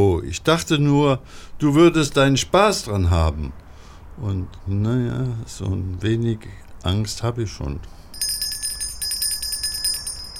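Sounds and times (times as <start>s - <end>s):
speech: 0.2s - 3.6s, 4.2s - 8.0s
small bell ringing at a set of gates: 8.1s - 10.3s.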